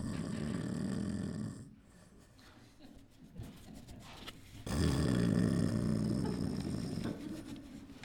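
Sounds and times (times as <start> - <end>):
person imitating snoring: 0.0 - 1.7, 4.7 - 7.0.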